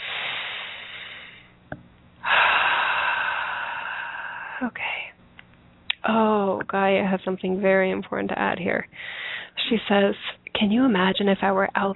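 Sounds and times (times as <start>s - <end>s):
deep breath in and long exhale: 0.0s - 1.6s, 2.2s - 4.6s, 8.9s - 9.6s
speech: 6.1s - 11.9s.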